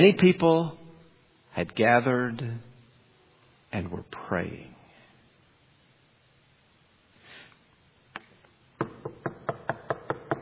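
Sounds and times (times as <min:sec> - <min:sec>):
speech: 0:00.0 - 0:00.8, 0:01.6 - 0:02.7, 0:03.7 - 0:04.7
firm raps on a wooden door at the outer entrance of a house: 0:08.8 - 0:10.3.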